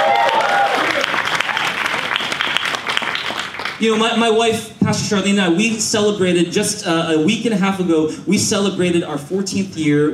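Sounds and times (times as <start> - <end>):
large audience applauding: 0.0 - 3.8
speech: 3.8 - 10.1.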